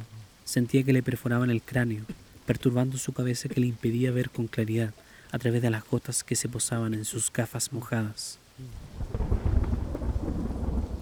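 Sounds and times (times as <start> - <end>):
steady rain: 0.0 - 11.0
speech: 0.5 - 8.8
deep roll of thunder rumbling: 8.8 - 11.0.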